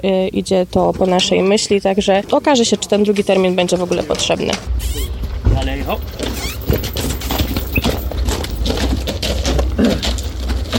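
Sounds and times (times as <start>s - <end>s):
speech: 0.0s - 5.2s, 5.9s - 7.1s
constant rumble of outdoor noise: 0.0s - 10.7s
horse hooves clip-clopping during inspection: 0.7s - 10.7s.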